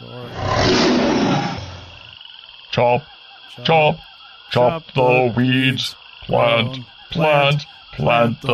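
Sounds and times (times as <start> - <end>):
tiger roaring: 0.2 - 2.1
speech: 2.8 - 8.5.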